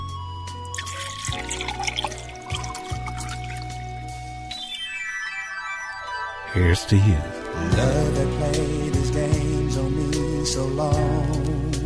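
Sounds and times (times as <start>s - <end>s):
wine poured from a freshly opened bottle into a glass: 0.7s - 4.1s
speech: 6.6s - 11.7s.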